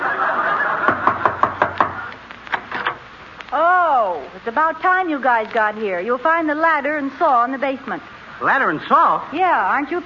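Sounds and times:
laughter: 0.0s - 2.1s
faint hum: 0.0s - 10.0s
knocking on a door: 0.9s - 2.0s
speech: 4.4s - 10.0s.

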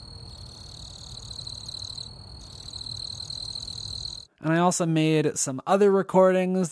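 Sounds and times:
cricket chirping outside a house at night: 0.0s - 4.4s
low rumble of outdoor night ambience: 0.0s - 6.7s
speech: 4.4s - 6.7s.

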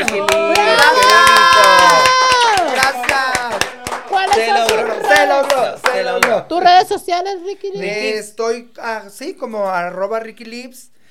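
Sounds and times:
people cheering: 0.0s - 6.4s
small group clapping: 0.0s - 6.6s
speech: 6.5s - 10.9s.

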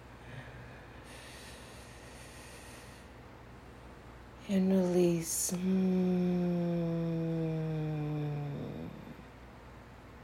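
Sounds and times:
low constant hiss: 0.0s - 10.2s
deep breath drawn in during a calming guided exercise: 0.2s - 3.2s
speech: 4.5s - 6.0s.

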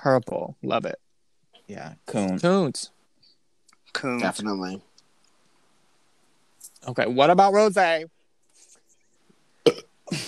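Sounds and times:
speech: 0.0s - 1.0s, 1.7s - 3.0s, 3.9s - 4.9s, 6.8s - 8.2s, 9.6s - 10.2s
person burping: 9.6s - 10.2s.

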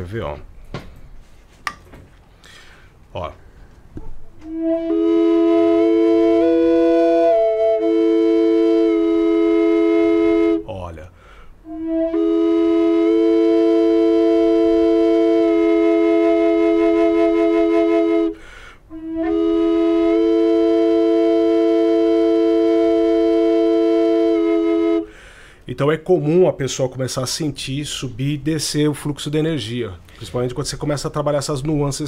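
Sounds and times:
speech: 0.0s - 0.5s, 3.1s - 3.4s, 4.4s - 5.2s, 25.8s - 32.0s
Native American flute playing sustained notes: 4.4s - 10.7s, 11.6s - 25.1s.

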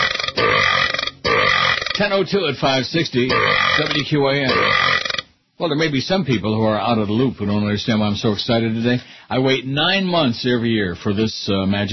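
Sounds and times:
loud raspy burps: 0.0s - 2.2s, 3.3s - 5.3s
speech: 2.0s - 5.0s, 5.6s - 11.9s.

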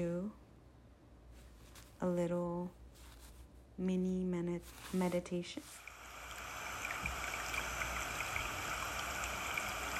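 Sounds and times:
speech: 2.0s - 2.8s, 3.8s - 5.9s
flowing stream water with trickles and gurgles: 5.8s - 9.9s.

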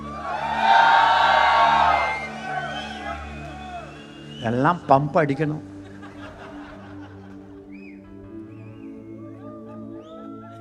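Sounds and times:
audience shouting and cheering: 0.0s - 4.4s
laughter: 0.0s - 10.5s
speech: 4.4s - 5.7s.

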